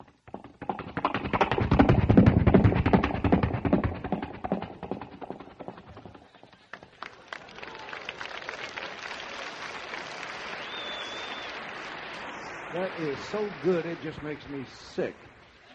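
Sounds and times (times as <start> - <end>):
vocal imitation of galloping horse clip-clop into a microphone: 0.0 - 6.9
thin whistle: 10.5 - 11.6
speech: 13.3 - 15.3.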